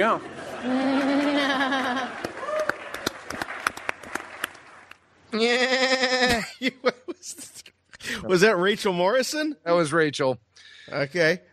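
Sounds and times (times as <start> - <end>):
speech: 0.0 - 2.2, 5.3 - 11.5
laughter: 0.0 - 2.4, 6.2 - 7.7
scattered sharp claps and clicks: 2.2 - 5.1
person imitating a goat bleating: 5.4 - 6.4.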